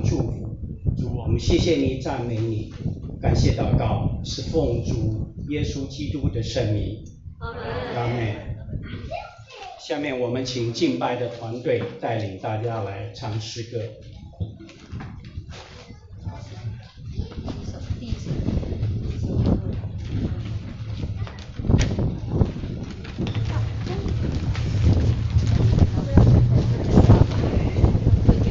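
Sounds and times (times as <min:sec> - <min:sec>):
strong wind buffeting an outdoor microphone: 0:00.0 - 0:09.5, 0:14.0 - 0:28.4
voices: 0:00.0 - 0:28.4
speech: 0:01.3 - 0:09.2, 0:09.8 - 0:15.1.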